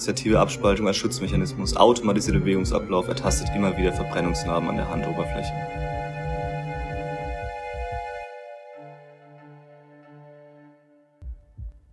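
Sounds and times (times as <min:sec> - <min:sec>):
speech: 0:00.0 - 0:05.9
low heartbeat thumps of a person's heartbeat calming down: 0:00.3 - 0:08.3, 0:11.2 - 0:11.9.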